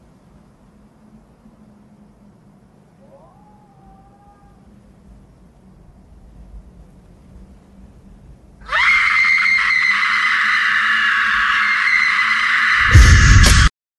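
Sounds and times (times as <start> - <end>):
woman's piercing scream from a TV show: 8.7 - 13.0.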